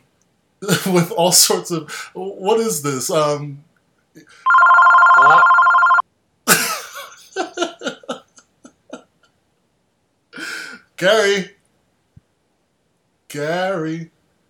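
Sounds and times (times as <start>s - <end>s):
speech: 0.6s - 5.6s, 11.0s - 11.6s, 13.3s - 14.2s
loud steady electronic phone ring: 4.5s - 6.0s
laughter: 6.5s - 9.3s.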